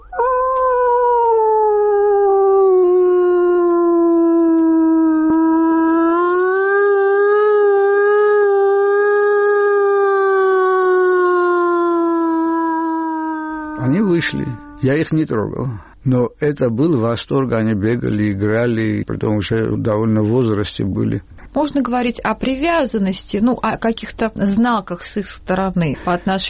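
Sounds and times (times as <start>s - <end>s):
person imitating a wolf howl: 0.0s - 14.8s
speech: 14.8s - 26.4s.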